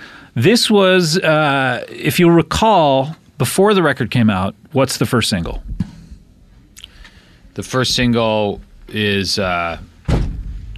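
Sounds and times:
speech: 0.4 - 5.9, 7.6 - 9.9
ankle knocking against a chair leg: 10.0 - 10.7.

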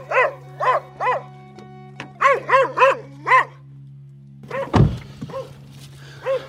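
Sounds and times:
dog barking at a door: 0.0 - 1.3, 2.2 - 3.6, 4.5 - 5.6, 6.2 - 6.4
heavy thump: 4.7 - 5.3.

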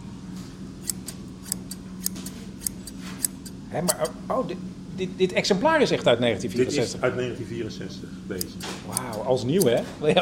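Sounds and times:
low hum: 0.0 - 10.2
vintage metal scissors snipping open and shut: 0.8 - 4.1, 8.4 - 10.2
speech: 3.7 - 10.2.

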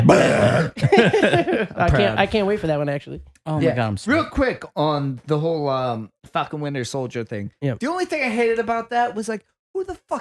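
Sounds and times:
loud drawn-out burp: 0.0 - 0.9
speech: 0.1 - 10.1
laughter: 0.5 - 2.2.

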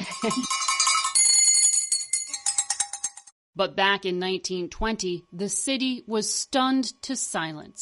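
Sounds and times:
hand bell ringing: 0.0 - 3.3
speech: 0.1 - 0.6, 3.6 - 7.8.

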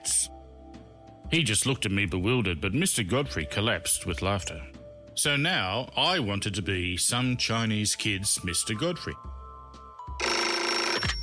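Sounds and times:
speech: 1.3 - 9.4
telephone ringing: 10.0 - 11.2.

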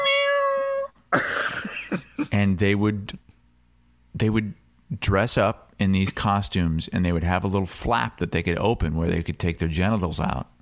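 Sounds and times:
cat meowing: 0.0 - 0.9
speech: 2.4 - 3.2, 4.2 - 10.5.

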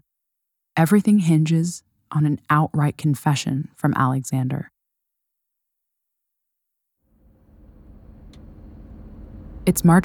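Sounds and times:
speech: 0.8 - 4.7, 9.7 - 10.0
car engine rumbling as the car slowly pulls up to a hospital: 7.1 - 10.0.

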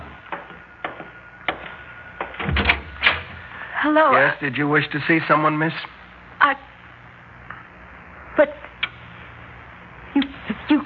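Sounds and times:
front door creaking: 0.3 - 3.5
low thump: 2.2 - 3.4
speech: 3.8 - 6.6.

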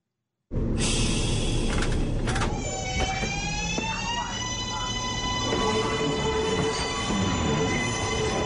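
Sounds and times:
subway train motors and wheels rumbling: 0.5 - 8.4.

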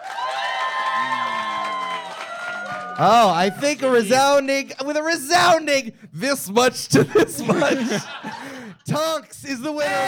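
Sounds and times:
audience excited whoops and shouting voices: 0.0 - 4.0, 9.8 - 10.0
audience applause to vote for a contest winner: 0.0 - 4.4
speech: 3.0 - 8.2, 8.9 - 10.0
laughter: 6.9 - 9.0.

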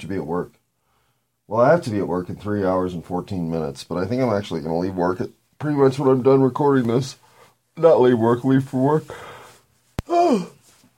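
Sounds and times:
speech: 0.0 - 0.6, 1.5 - 7.2, 7.8 - 9.3, 10.3 - 10.6
person yawning: 10.0 - 10.6.

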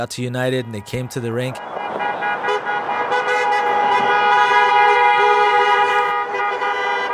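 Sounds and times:
speech: 0.0 - 1.7
car horns honking: 0.0 - 7.1.

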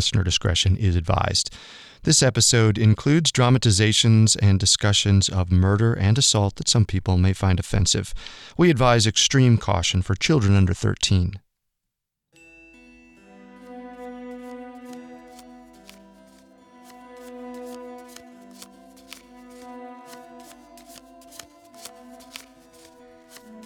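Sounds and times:
speech: 0.0 - 11.4
sustained musical drone: 12.4 - 23.6
deck of tarot cards shuffled: 14.3 - 23.6.

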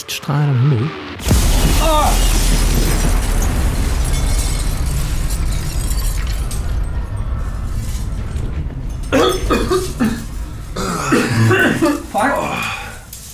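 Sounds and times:
speech: 0.2 - 3.2
sharp crackling bursts: 1.0 - 13.3
debris-like noise: 1.2 - 13.3
loud booming explosion with deep rumbling roar: 1.2 - 13.3.

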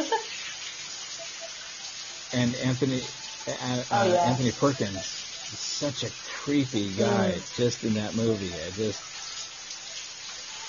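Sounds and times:
shower water running: 0.0 - 10.6
speech: 2.3 - 9.4.

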